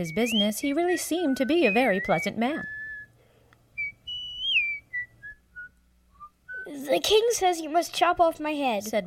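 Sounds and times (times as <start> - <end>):
speech: 0.0 - 2.8, 6.8 - 9.0
executioner in a dungeon whistling a meandering tune: 0.0 - 3.2, 3.8 - 6.7.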